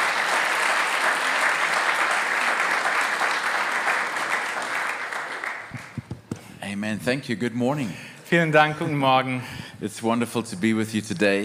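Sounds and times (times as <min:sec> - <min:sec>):
audience applause greeting a guest speaker: 0:00.0 - 0:06.3
speech: 0:06.7 - 0:11.4.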